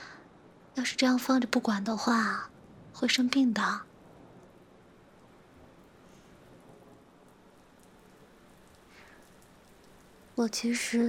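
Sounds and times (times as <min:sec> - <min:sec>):
steady rain on a hard surface: 0:00.3 - 0:11.0
speech: 0:00.8 - 0:03.9, 0:10.4 - 0:11.0.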